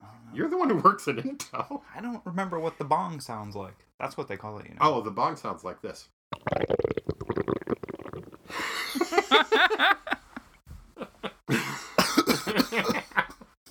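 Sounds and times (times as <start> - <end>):
speech: 0.3 - 7.7, 9.3 - 10.1
rough coughs: 11.5 - 13.4.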